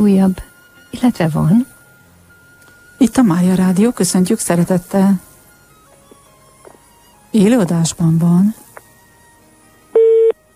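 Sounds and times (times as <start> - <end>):
speech: 0.0 - 1.7, 3.0 - 5.3, 7.3 - 8.6
telephone busy tone after a call into a live radio broadcast drops: 10.0 - 10.4.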